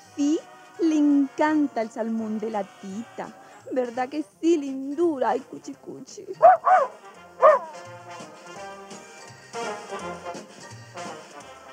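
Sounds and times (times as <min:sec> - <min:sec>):
speech: 0:00.2 - 0:00.5, 0:01.4 - 0:07.9
small dog yipping: 0:06.4 - 0:07.8.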